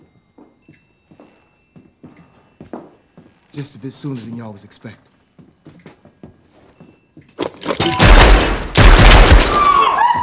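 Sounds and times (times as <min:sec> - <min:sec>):
speech: 0:03.6 - 0:05.1
gunfire from a film shootout: 0:07.8 - 0:09.8.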